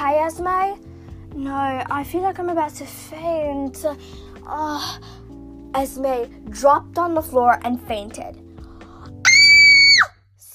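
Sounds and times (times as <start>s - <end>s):
speech: 0.3s - 8.4s
mother screaming in alarm: 9.2s - 10.1s.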